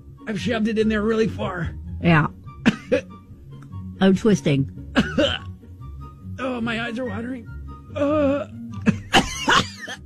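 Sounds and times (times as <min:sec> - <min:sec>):
speech: 0:00.3 - 0:03.2, 0:04.0 - 0:05.4, 0:06.6 - 0:08.6
person coughing during a deep nasal swab test: 0:02.6 - 0:03.1, 0:05.0 - 0:05.5, 0:08.4 - 0:10.0.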